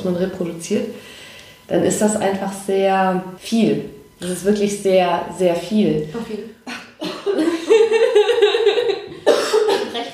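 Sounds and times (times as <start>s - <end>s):
speech: 0.0s - 6.8s
laughter: 6.7s - 10.1s
person coughing into the crook of their arm: 9.2s - 10.1s.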